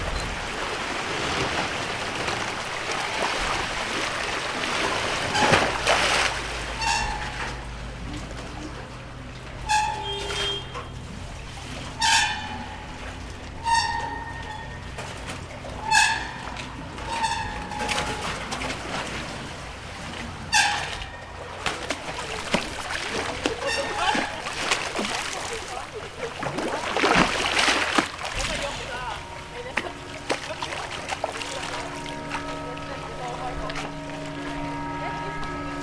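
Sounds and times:
louder splash or passing surge: 0:00.0 - 0:07.6, 0:14.9 - 0:32.5
lapping water on canals of Venice: 0:00.0 - 0:35.8
low boat engines humming on canals of Venice at night: 0:00.0 - 0:35.8.

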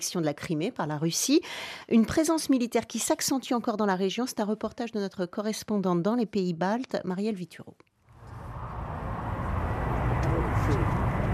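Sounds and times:
speech: 0:00.0 - 0:07.9
distant F-16 fighter jet engines running on an airfield: 0:08.1 - 0:11.3.

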